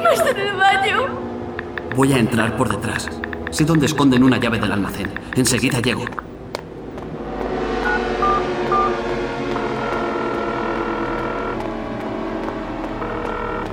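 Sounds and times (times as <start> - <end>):
steady continuous noise: 0.0 - 13.7
speech: 0.1 - 1.2, 2.0 - 6.3
telephone keypad tones dialing an emergency number: 1.6 - 4.4, 5.0 - 6.3, 7.8 - 9.0.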